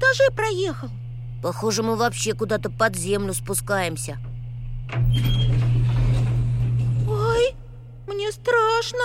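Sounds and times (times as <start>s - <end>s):
steady low mechanical hum: 0.0s - 9.0s
speech: 0.2s - 4.3s, 4.9s - 5.7s, 8.2s - 9.0s
elevator doors sliding open: 4.8s - 7.5s.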